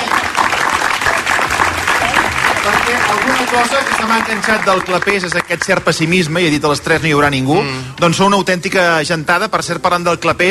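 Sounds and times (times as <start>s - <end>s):
large crowd applauding at an afternoon outdoor gathering: 0.0s - 6.6s
speech: 2.6s - 10.5s.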